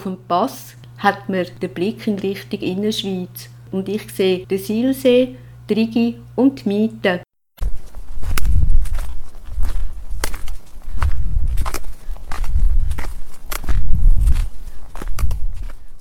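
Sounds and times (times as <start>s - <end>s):
speech: 0.0s - 7.2s
footsteps walking downhill on a mountain pass: 7.6s - 15.9s.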